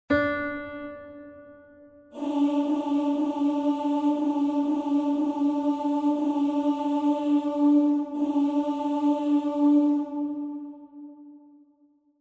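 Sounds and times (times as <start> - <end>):
second voice of a three-voice vocal piece: 2.2 - 11.4.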